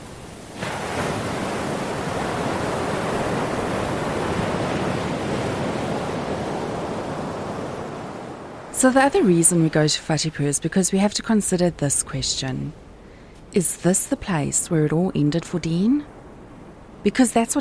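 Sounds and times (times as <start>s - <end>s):
ocean waves crashing against rocks at Whatipu: 0.0s - 10.6s
speech: 8.8s - 12.8s, 13.5s - 16.2s, 17.0s - 17.5s.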